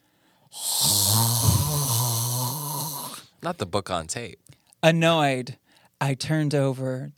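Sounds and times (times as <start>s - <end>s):
loud raspy snore-like heavy breathing: 0.1s - 3.3s
speech: 3.4s - 7.1s.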